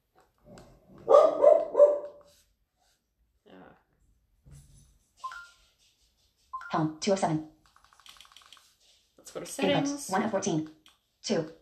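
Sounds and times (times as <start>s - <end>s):
household dogs barking: 1.0s - 2.2s
speech: 6.8s - 7.5s, 9.4s - 11.5s.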